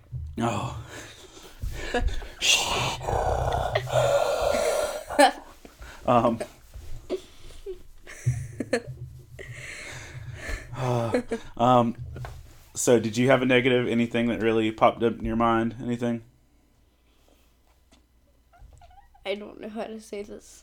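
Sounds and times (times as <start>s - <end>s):
speech: 0.4s - 1.2s, 1.9s - 4.1s, 5.2s - 5.4s, 6.1s - 6.6s, 10.8s - 12.0s, 12.8s - 16.3s, 19.3s - 20.6s
groan-like vocal sounds: 0.4s - 5.4s
heavy breathing into the microphone: 0.4s - 8.4s, 9.4s - 11.6s.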